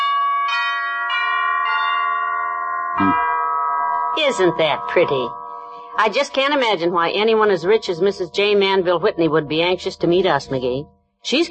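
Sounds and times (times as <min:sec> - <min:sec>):
mansion doorbell chime ringing with bright resonant bell tones: 0:00.0 - 0:06.5
speech: 0:03.0 - 0:03.2, 0:04.3 - 0:05.4, 0:06.0 - 0:11.4.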